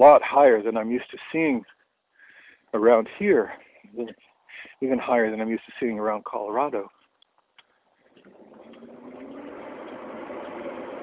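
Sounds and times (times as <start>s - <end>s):
speech: 0.0s - 1.8s, 2.7s - 7.0s
large recycling truck engine rumbling: 8.1s - 11.0s.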